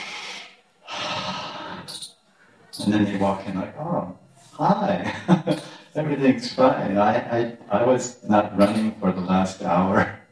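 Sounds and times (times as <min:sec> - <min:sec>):
deep breath: 0:00.0 - 0:02.6
speech: 0:02.8 - 0:10.2.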